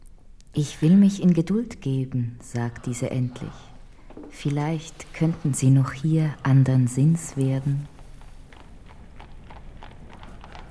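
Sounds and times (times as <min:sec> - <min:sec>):
speech: 0:00.6 - 0:08.0
hoofbeats of a four-horse coach driven fast over stone cobbles in a castle courtyard: 0:05.0 - 0:10.6.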